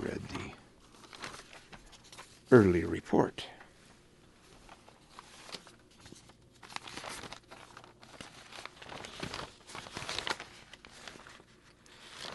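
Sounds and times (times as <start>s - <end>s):
paper sheets crinkling and rustling as they are shuffled: 0.0s - 2.7s, 4.4s - 12.3s
speech: 2.5s - 3.6s.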